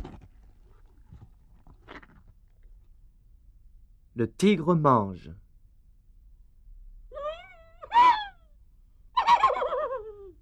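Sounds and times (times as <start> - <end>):
speech: 4.2 - 5.4
crying horse whinnying: 7.2 - 8.4, 9.2 - 10.2.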